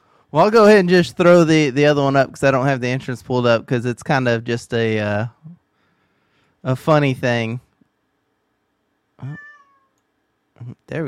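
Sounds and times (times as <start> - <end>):
speech: 0.3 - 5.6, 6.6 - 7.6, 9.2 - 9.5, 10.6 - 11.0
cat meowing: 9.2 - 10.0.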